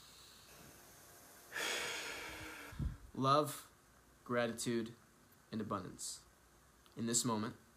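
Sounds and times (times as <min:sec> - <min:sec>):
deep breath in during a mantra meditation exercise: 0:01.5 - 0:03.1
speech: 0:03.2 - 0:03.7, 0:04.3 - 0:06.3, 0:07.0 - 0:07.6.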